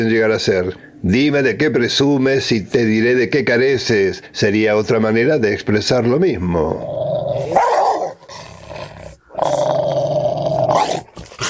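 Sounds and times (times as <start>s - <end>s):
speech: 0.0s - 7.7s
dog growling and snarling: 6.6s - 11.4s.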